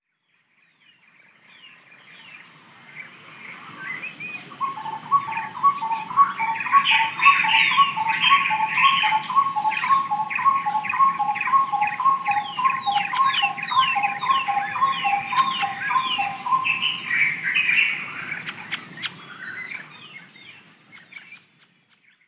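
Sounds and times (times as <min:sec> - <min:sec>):
busier higher bird notes: 0:04.5 - 0:18.1
Black-collared barbet pair singing an antiphonal duet in the Okavango Delta: 0:04.6 - 0:17.1.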